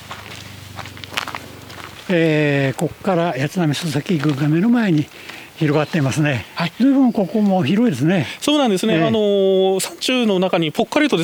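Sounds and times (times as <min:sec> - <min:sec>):
steady low hum: 0:00.0 - 0:04.6
footsteps walking along a mountain path: 0:00.0 - 0:10.2
speech: 0:02.1 - 0:11.2.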